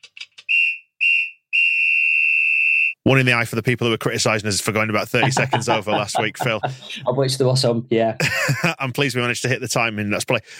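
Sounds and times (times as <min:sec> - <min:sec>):
referee's full-time whistle blasts: 0:00.5 - 0:03.0
speech: 0:03.1 - 0:10.5
laughter: 0:05.0 - 0:07.4, 0:08.2 - 0:09.0.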